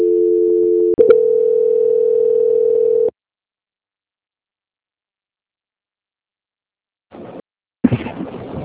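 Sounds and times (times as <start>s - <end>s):
telephone tone during a call transfer: 0.0s - 3.1s.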